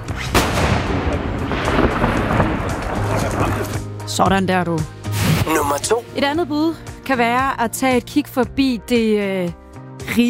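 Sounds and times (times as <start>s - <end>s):
salvaged ship's cannon firing outdoors at Bangsbo Fort, Frederikshavn, Denmark: 0.3s - 3.6s
speech: 4.2s - 10.2s.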